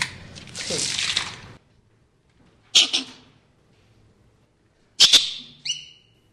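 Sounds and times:
captive male squirrels barking alarm calls: 2.8s - 3.2s, 5.0s - 6.2s.

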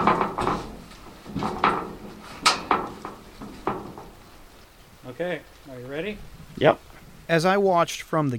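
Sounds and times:
heavy culvert bear trap door clanking and scraping as it is opened with a lever: 0.0s - 3.2s
speech: 5.2s - 8.3s.

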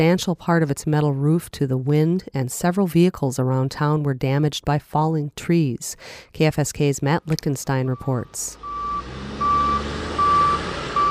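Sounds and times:
speech: 0.0s - 8.9s
reversing alarms of backhoes clearing a landslide on a highway: 7.9s - 11.0s.

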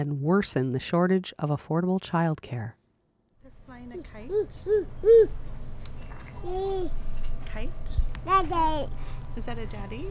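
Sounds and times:
speech: 0.0s - 2.8s, 3.8s - 5.5s, 6.4s - 7.0s, 7.6s - 10.0s
infants babbling and gurgling in a daycare infant room: 4.0s - 5.4s.

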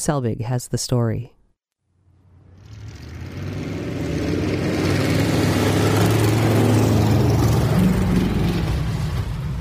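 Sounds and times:
speech: 0.0s - 1.4s
race car engines revving and speeding on ice: 2.2s - 9.5s.

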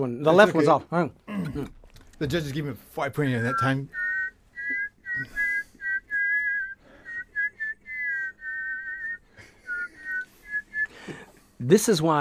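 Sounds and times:
speech: 0.0s - 4.0s, 5.2s - 5.4s, 11.6s - 12.1s
double whistling of a melody in two harmonizing tones: 3.3s - 11.0s.

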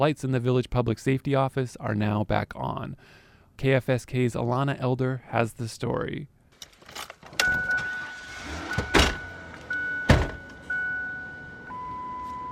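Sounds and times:
speech: 0.0s - 7.1s
steady electronic chime tone: 7.4s - 12.5s
heavy thumps and clunks from a car: 8.7s - 10.6s.

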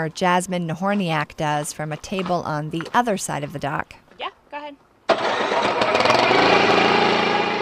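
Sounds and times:
speech: 0.0s - 4.0s
small one-cylinder Subaru Robin engine of about 7 horsepower starting on a kayak: 5.1s - 7.5s.

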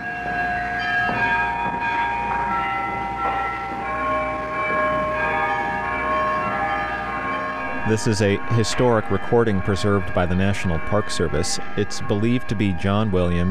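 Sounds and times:
church carillon bells of an 8-bell carillon in Sitka: 0.0s - 13.5s
steady hum: 7.5s - 13.5s
speech: 7.9s - 13.5s.

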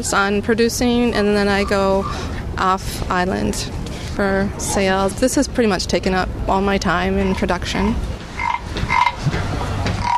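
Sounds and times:
speech: 0.0s - 8.1s
steady low noise: 0.0s - 10.1s
wooden croaking frog toy made in Thailand croaking: 8.4s - 9.3s, 10.0s - 10.1s.

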